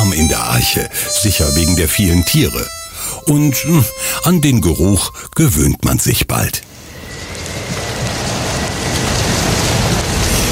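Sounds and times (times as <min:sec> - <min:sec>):
speech: 0:00.2 - 0:06.7
heavy rain drumming on a surface: 0:07.0 - 0:10.5.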